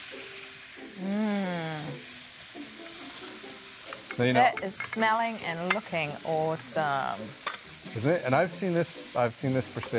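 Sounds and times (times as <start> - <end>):
scramble sizzling in a pan: 0.0 - 9.9
voice-like hum: 1.0 - 2.0
speech: 4.2 - 9.9.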